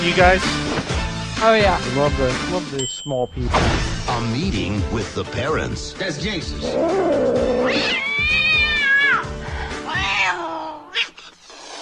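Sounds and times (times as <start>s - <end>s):
speech: 0.0s - 8.6s
cat meowing in long wavering cries: 6.7s - 9.3s, 9.9s - 11.0s
cat chirp: 7.6s - 9.2s.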